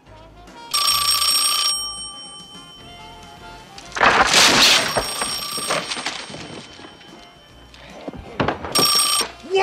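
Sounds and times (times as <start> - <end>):
telephone ringing: 0.7 - 9.5
clattering and rustling handling noises: 3.7 - 9.2.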